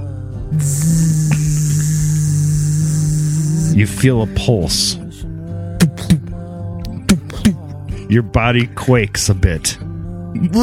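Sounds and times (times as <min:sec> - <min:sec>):
speech: 0:00.5 - 0:01.3, 0:03.8 - 0:05.0, 0:08.1 - 0:10.6
loud steady electric buzzing drone: 0:00.5 - 0:03.8.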